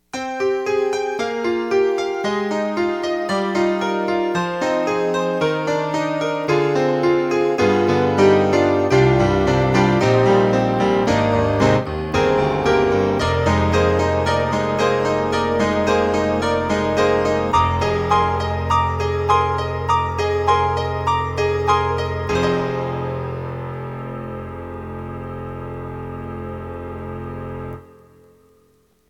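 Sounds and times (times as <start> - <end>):
UltraProteus synthesizer stereo grand piano: 0.0 - 29.0.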